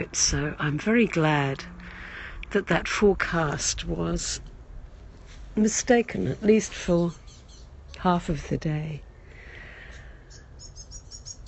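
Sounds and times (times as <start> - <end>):
speech: 0.0 - 1.8, 2.5 - 4.5, 5.6 - 7.2, 8.0 - 9.1
soft steady outdoor rumble: 0.0 - 11.4
blackbirds singing: 6.9 - 8.1, 9.0 - 11.4.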